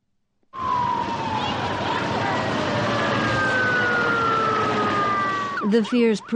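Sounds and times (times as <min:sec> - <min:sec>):
loud warning siren wailing with slowly falling tone: 0:00.6 - 0:06.3
dense wash of crowd noise: 0:01.0 - 0:06.3
indistinct voices: 0:01.2 - 0:06.3
speech: 0:05.7 - 0:06.3.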